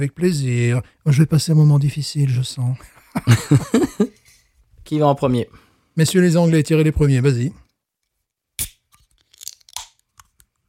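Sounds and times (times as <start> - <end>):
speech: 0.0 - 4.2, 4.9 - 7.6
laughter: 2.8 - 4.2
beer can tab cracking open: 8.6 - 10.4.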